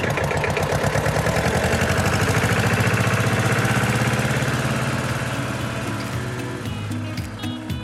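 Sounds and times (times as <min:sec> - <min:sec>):
tractor engine chugging while pulling away: 0:00.0 - 0:07.8.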